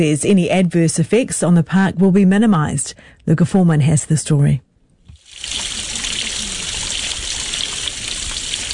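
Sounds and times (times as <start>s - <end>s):
speech: 0.0s - 4.7s
water pouring from a stormwater pipe into a stream in Parry Coldy Park Warkworth: 5.2s - 8.7s.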